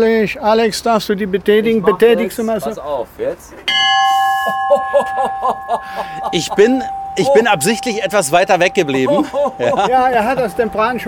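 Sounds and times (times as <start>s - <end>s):
speech: 0.0s - 3.8s, 4.5s - 11.0s
ship's bell ringing: 3.7s - 11.0s
laughter: 4.2s - 10.8s.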